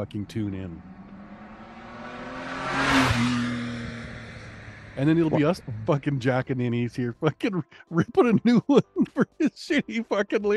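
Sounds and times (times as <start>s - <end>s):
speech: 0.0s - 1.0s, 2.7s - 3.5s, 5.0s - 10.5s
car engine revving and roaring: 0.0s - 7.1s
laughter: 5.0s - 10.5s.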